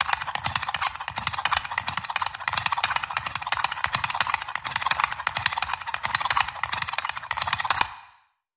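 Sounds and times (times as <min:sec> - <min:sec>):
toy engine windup: 0:00.0 - 0:08.0.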